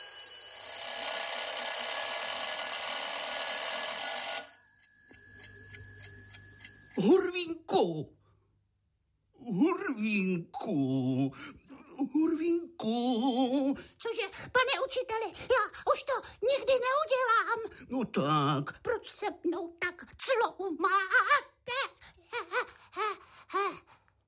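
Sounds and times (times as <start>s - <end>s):
loud continuous bell ringing: 0.0s - 7.2s
speech: 7.0s - 8.2s, 9.5s - 21.8s.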